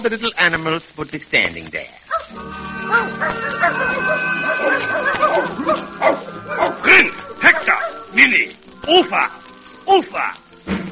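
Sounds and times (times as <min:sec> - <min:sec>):
speech: 0:00.0 - 0:10.8
trained dogs barking and yipping: 0:02.0 - 0:08.2
higher whiny dog yelps: 0:02.1 - 0:06.9.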